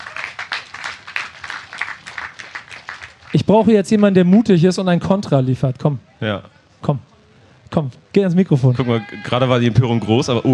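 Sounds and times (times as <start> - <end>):
audience applause: 0.0 - 4.6
speech: 3.4 - 7.1, 7.7 - 10.5.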